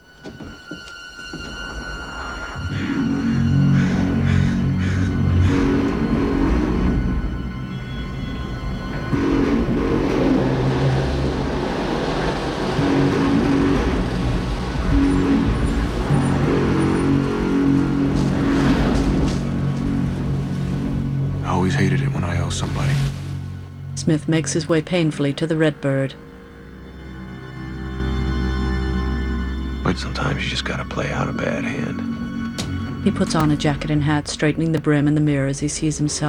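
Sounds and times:
car engine driving away: 0:00.0 - 0:36.2
car road noise: 0:00.0 - 0:36.2
speech: 0:24.1 - 0:26.3, 0:30.0 - 0:32.1, 0:33.0 - 0:36.2.

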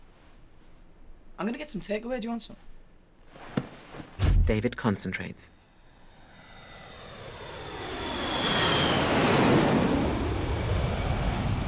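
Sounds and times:
speech: 0:01.4 - 0:02.7, 0:04.5 - 0:05.6
airplane engine drone inside cabin: 0:05.6 - 0:11.6.

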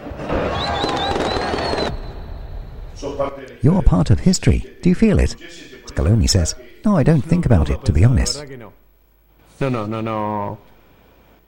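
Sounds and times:
fireworks crackling and popping at street celebration: 0:00.3 - 0:02.1
high whistling firework streak: 0:00.5 - 0:03.1
speech: 0:03.1 - 0:08.7, 0:09.6 - 0:10.7.

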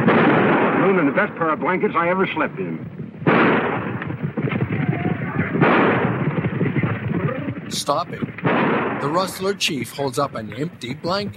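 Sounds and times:
barrage of gunshots fired into bedrolls at a camp: 0:00.0 - 0:01.5, 0:03.2 - 0:09.5
speech: 0:01.1 - 0:03.8, 0:07.7 - 0:11.3.

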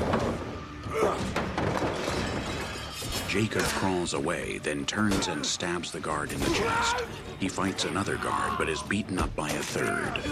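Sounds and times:
debris clattering: 0:00.0 - 0:04.3
shattering crash of a person knocked over a table: 0:01.2 - 0:03.5
speech: 0:03.3 - 0:10.3.

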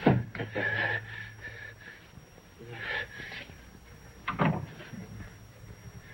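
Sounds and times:
low hum: 0:00.0 - 0:06.1
door opening and closing as someone leaves: 0:04.3 - 0:04.8.

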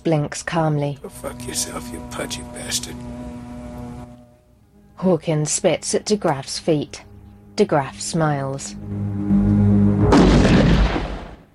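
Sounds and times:
speech: 0:00.0 - 0:03.5, 0:05.0 - 0:09.5
shotgun blast: 0:10.1 - 0:11.4.

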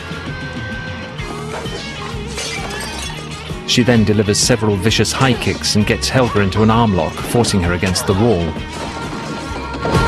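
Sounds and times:
heavy glass vase smashed against a head in a fight: 0:02.4 - 0:03.2
speech: 0:03.7 - 0:09.0.

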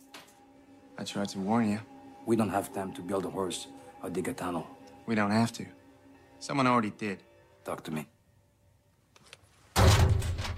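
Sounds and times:
speech: 0:01.0 - 0:05.8, 0:06.4 - 0:08.1
door opening onto a secret passageway in a small room: 0:09.7 - 0:10.5.

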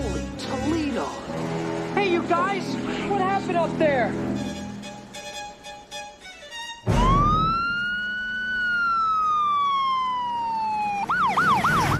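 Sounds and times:
low traffic rumble: 0:00.0 - 0:11.9
speech: 0:03.5 - 0:04.4
ambulance siren wailing and yelping: 0:06.9 - 0:11.9.

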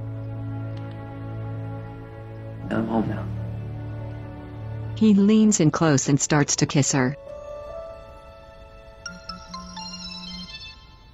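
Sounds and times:
speech: 0:02.7 - 0:03.4, 0:05.0 - 0:07.2
mobile phone ringtone with quick electronic melody: 0:09.0 - 0:11.1.

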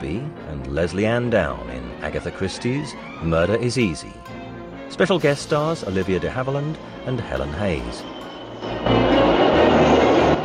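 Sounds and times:
speech: 0:00.7 - 0:09.0
train speeding along tracks through green countryside: 0:05.2 - 0:10.4.

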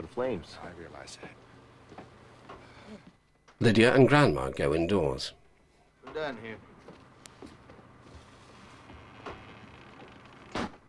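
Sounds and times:
faint noise: 0:00.0 - 0:10.8
speech: 0:00.2 - 0:02.0, 0:02.9 - 0:05.4, 0:06.0 - 0:06.7
house back door being shut: 0:10.4 - 0:10.8.

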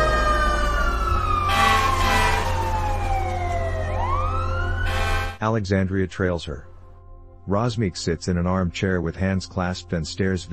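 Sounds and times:
rumble of engines and traffic: 0:00.0 - 0:04.8
fire truck sirens wailing as two fire trucks race past: 0:00.0 - 0:05.4
speech: 0:05.4 - 0:06.7, 0:07.4 - 0:10.5.

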